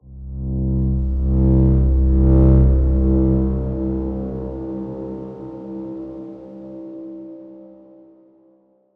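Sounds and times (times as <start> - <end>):
dark swarm note at C1 played fortissimo: 0.3 - 6.8.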